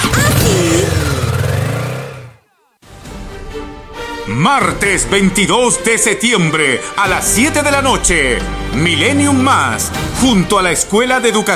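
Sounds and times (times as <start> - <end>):
motorcycle engine revving: 0.0 - 2.4
speech: 4.4 - 11.5.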